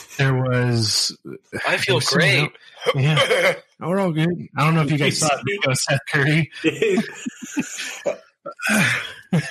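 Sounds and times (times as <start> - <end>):
speech: 0.2 - 9.4
laughter: 1.6 - 9.4
person coughing: 2.8 - 3.6, 6.6 - 9.4.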